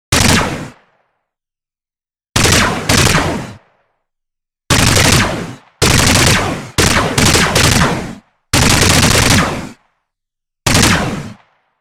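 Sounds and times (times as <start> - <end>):
laser pistol firing: 0.1 - 0.9, 2.4 - 3.7, 4.7 - 9.8, 10.7 - 11.6.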